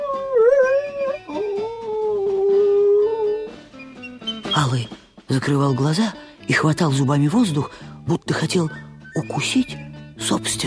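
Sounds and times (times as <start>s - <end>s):
dog howling: 0.0s - 4.5s
speech: 4.6s - 10.6s.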